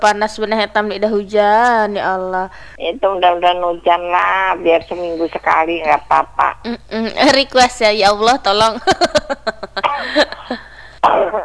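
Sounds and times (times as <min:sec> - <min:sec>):
speech: 0:00.0 - 0:11.4
laughter: 0:05.3 - 0:11.4
person with a recurring cough coughing: 0:09.8 - 0:11.4.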